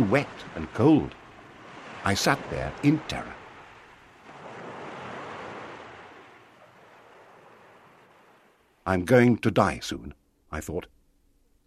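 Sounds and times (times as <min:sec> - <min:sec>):
speech: 0:00.0 - 0:01.2, 0:02.0 - 0:03.4, 0:08.8 - 0:11.0
big ocean wave crashing: 0:00.0 - 0:08.8
wind rushing over the water: 0:00.0 - 0:08.8
heavy ocean surf: 0:00.0 - 0:09.1.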